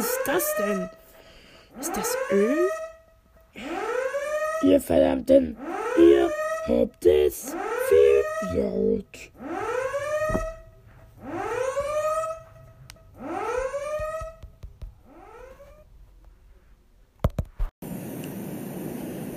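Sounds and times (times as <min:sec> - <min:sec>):
alarm siren whooping upward: 0:00.0 - 0:15.9
speech: 0:00.2 - 0:01.0, 0:01.8 - 0:02.8, 0:04.6 - 0:09.6.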